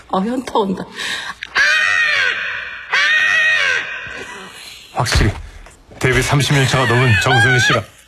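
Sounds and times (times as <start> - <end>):
speech: 0.1 - 1.4, 4.9 - 5.4, 6.0 - 7.9
person imitating a crow's caw: 1.5 - 4.5.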